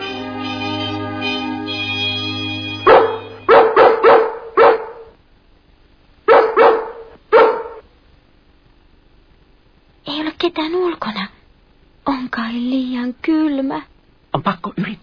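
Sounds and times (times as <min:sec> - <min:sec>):
dog barking to relay a message to other dogs: 0:02.9 - 0:05.2, 0:06.3 - 0:07.8
speech: 0:10.4 - 0:11.4, 0:12.1 - 0:15.0.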